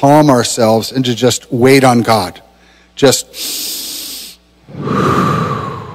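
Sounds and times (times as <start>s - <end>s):
speech: 0.0s - 2.4s, 3.0s - 3.8s, 4.7s - 5.5s
slow deep breath in and out: 2.6s - 5.9s.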